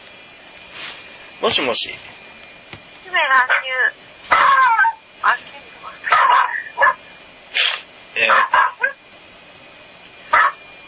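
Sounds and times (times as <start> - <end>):
speech: 1.4 - 2.2, 3.1 - 4.4, 5.2 - 5.6
pet dog barking in short sharp bursts: 3.5 - 3.7, 4.3 - 5.0, 6.1 - 7.0, 8.2 - 9.0, 10.3 - 10.6.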